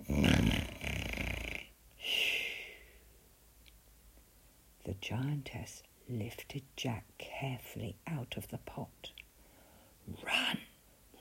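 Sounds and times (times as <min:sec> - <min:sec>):
deep rumbling snoring of a giant: 0:00.0 - 0:01.7
speech: 0:04.9 - 0:09.2, 0:10.1 - 0:10.7.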